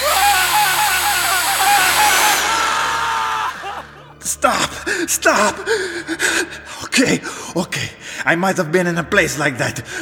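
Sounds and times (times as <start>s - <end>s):
power drill whirring: 0.0s - 3.0s
speech: 4.4s - 10.0s.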